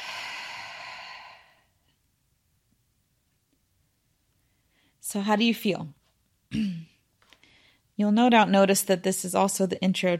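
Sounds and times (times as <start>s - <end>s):
slow breath drawn in through the nose and let out: 0.0s - 1.8s
speech: 5.1s - 6.8s, 8.0s - 10.1s.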